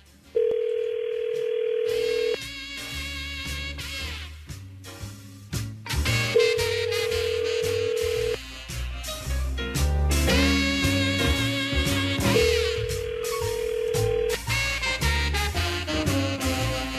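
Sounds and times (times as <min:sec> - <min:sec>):
phone ringback tones of unanswered call: 0:00.3 - 0:02.4, 0:06.5 - 0:08.4, 0:12.3 - 0:14.5
busy music playing: 0:01.9 - 0:16.9.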